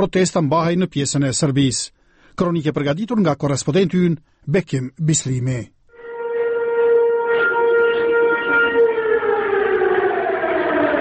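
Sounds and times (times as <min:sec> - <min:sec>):
speech: 0:00.0 - 0:05.8
civil defense alarm sirens wailing in northern Kosovo: 0:06.0 - 0:11.0.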